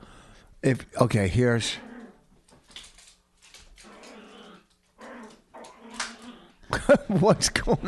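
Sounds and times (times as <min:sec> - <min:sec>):
speech: 0:00.6 - 0:01.9, 0:06.9 - 0:07.8
female dog growling playfully: 0:01.7 - 0:02.2, 0:03.8 - 0:06.7.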